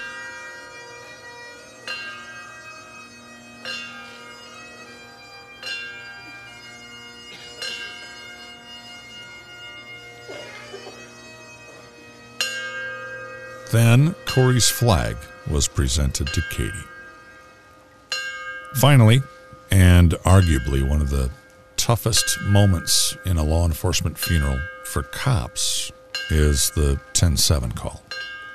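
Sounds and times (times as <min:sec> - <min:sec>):
memorial bell tolling: 0:12.4 - 0:28.5
speech: 0:13.7 - 0:16.9, 0:18.8 - 0:28.0.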